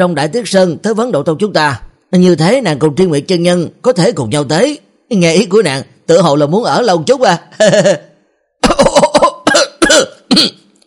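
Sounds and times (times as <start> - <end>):
speech: 0.0 - 8.1, 10.4 - 10.6
violent dry coughing from choking on a mooncake: 8.6 - 10.7.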